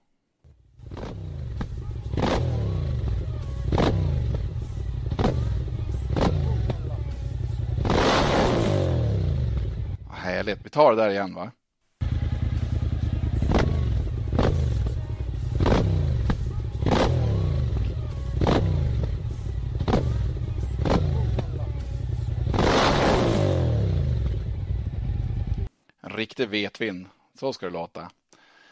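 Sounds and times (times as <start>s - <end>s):
motorcycle engine revving: 0.8s - 10.1s, 12.0s - 25.7s
speech: 10.4s - 11.6s, 26.4s - 28.2s.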